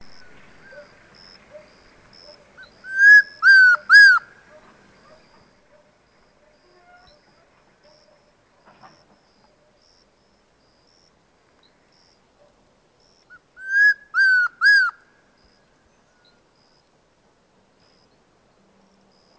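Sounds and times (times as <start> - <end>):
Chestnut-crowned Antpitta calling: 0.0 - 5.8, 13.3 - 16.4.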